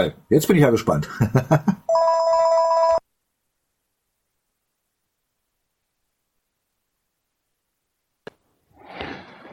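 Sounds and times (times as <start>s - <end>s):
speech: 0.0s - 2.0s
loud electronic phone ring: 1.9s - 3.0s
faint breathy noise: 8.7s - 9.5s.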